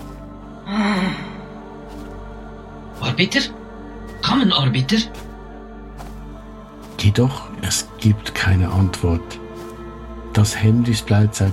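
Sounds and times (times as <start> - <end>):
faint low moan from a person: 0.6 - 1.5
speech: 3.2 - 3.6, 4.3 - 5.3, 7.1 - 9.4, 10.4 - 11.5.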